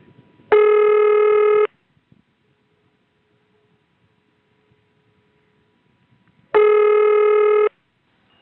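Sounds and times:
electronic ring signal from a telephone exchange ringing machine: 0:00.5 - 0:01.7, 0:06.6 - 0:07.8.

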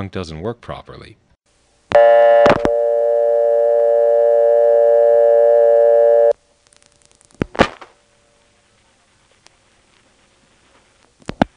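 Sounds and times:
speech: 0:00.0 - 0:01.2, 0:02.0 - 0:02.5
telephone line tone humming: 0:01.9 - 0:06.4.

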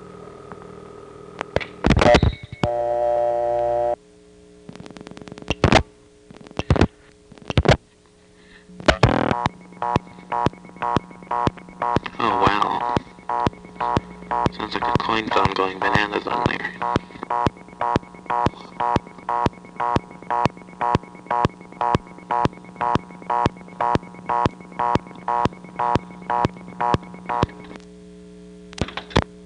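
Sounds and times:
low telephone line hum: 0:00.0 - 0:29.4
telephone reorder tone from a small step-by-step Bell System CDO: 0:01.9 - 0:04.0, 0:08.9 - 0:27.8.

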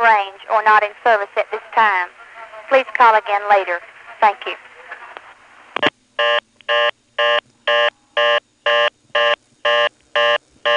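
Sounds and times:
speech: 0:00.2 - 0:04.7, 0:05.8 - 0:07.0
buzzy telephone ringtone pulses: 0:06.2 - 0:10.7.

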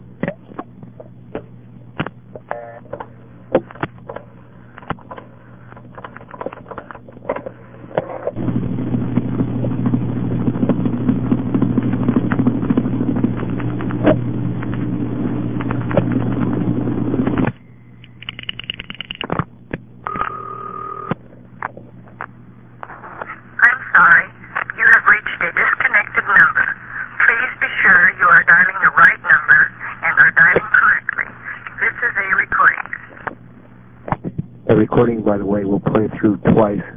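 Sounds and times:
low hum on a phone line: 0:00.0 - 0:36.9
telephone tandem switching tones: 0:20.0 - 0:21.2.

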